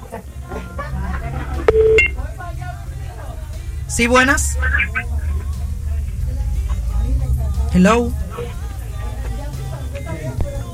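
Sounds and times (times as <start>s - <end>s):
laughter: 0.0s - 1.8s
murmur of voices: 0.0s - 10.7s
low hum: 0.8s - 7.2s
electronic telephone-line tone of a call on a radio phone line: 1.6s - 2.2s
speech: 3.9s - 4.9s, 7.8s - 8.2s.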